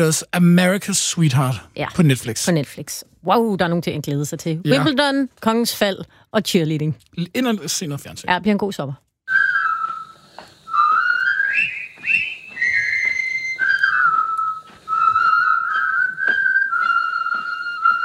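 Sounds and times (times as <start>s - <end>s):
speech: 0.0s - 9.1s
group whistling a jaunty march melody in unison: 9.3s - 18.0s.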